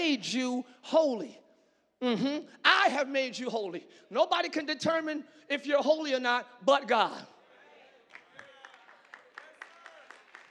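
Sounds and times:
speech: 0.1 - 1.4, 2.0 - 7.4
audience clapping: 8.0 - 10.5.

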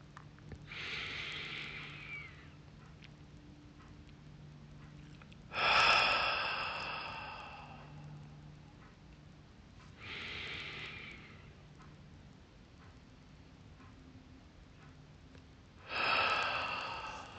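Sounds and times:
deep breathing in through nose, out through mouth: 0.7 - 2.6, 5.5 - 8.4, 9.9 - 11.8, 15.8 - 17.3.

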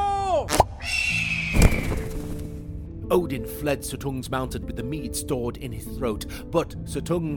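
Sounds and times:
eagle screech sweeping downward in pitch: 0.8 - 2.2
speech: 3.1 - 7.3.

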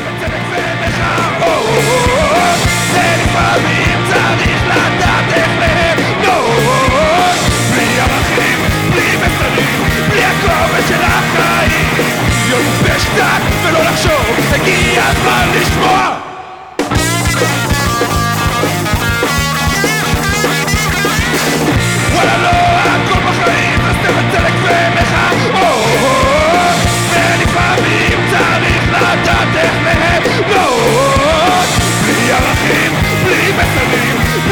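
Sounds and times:
rock song with raw shouted vocals over guitars and drums: 0.0 - 34.5.

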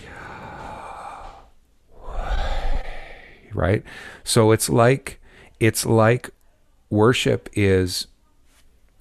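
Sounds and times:
slow deliberate breath in and fuller exhale: 0.0 - 4.3
speech: 3.6 - 8.1.

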